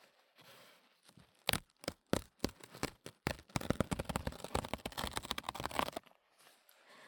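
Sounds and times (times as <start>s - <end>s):
kitchen paper tearing along its perforation: 1.3s - 6.0s.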